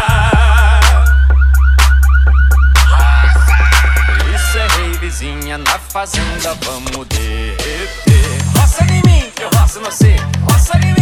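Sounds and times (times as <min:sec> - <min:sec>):
booming bass from a heavy bass sound system: 0:00.0 - 0:10.9
warbling pickup truck alarm set off by a heavy bass sound system: 0:00.1 - 0:06.2
speech: 0:06.0 - 0:10.9.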